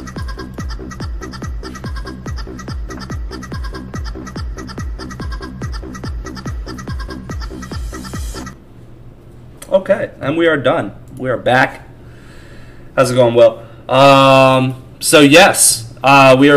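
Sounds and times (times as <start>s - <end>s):
bouncy oom-pah dance tune with clucking-like accents: 0.0s - 8.6s
speech: 9.7s - 11.8s, 13.0s - 16.5s.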